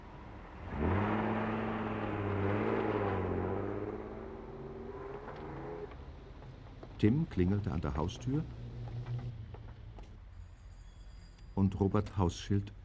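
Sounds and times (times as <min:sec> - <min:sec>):
police car engine starting and revving as it pulls away: 0:00.0 - 0:10.0
speech: 0:07.0 - 0:08.6, 0:11.6 - 0:12.8.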